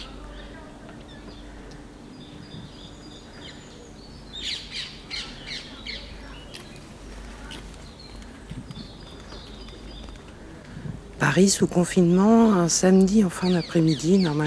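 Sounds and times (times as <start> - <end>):
birds chirping and tweeting in a Paris park: 0.0 - 14.4
soft steady low rumble of the city in Paris during lockdown: 0.0 - 14.4
speech: 11.2 - 14.4.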